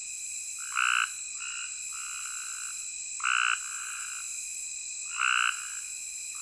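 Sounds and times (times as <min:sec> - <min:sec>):
Cope's gray tree frogs giving rough buzzy trills in vegetation in a dry ditch: 0:00.6 - 0:04.3, 0:05.1 - 0:06.3.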